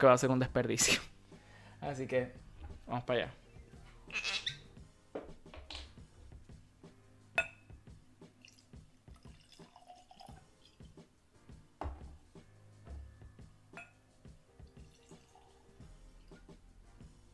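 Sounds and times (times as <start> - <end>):
speech: 0.0 - 1.1, 1.8 - 3.4, 4.1 - 4.4
glasses clinking: 7.4 - 7.7, 13.8 - 14.0
sharp tap of glass: 7.4 - 7.7
Oban Bay Reserve Night's Watch whisky and water pouring into glasses: 8.4 - 10.9, 14.7 - 16.5.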